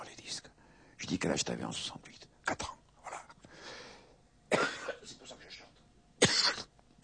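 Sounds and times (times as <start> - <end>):
speech: 1.1 - 2.8
throat-clearing: 4.5 - 5.1, 6.2 - 6.7
man coughing away from the microphone: 4.5 - 5.4, 6.2 - 6.7.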